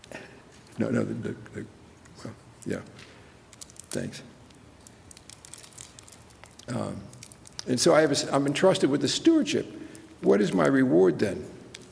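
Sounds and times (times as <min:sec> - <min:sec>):
speech: 0:00.8 - 0:03.1, 0:03.9 - 0:04.3, 0:06.7 - 0:11.6
cough drop wrapper being unwrapped, crinkling: 0:02.6 - 0:10.8, 0:11.6 - 0:11.9.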